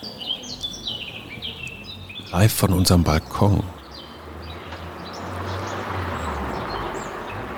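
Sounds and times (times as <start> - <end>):
Eurasian blackcap singing a warbling song outdoors: 0.0 - 7.5
speech: 2.3 - 3.8
car: 3.8 - 7.5.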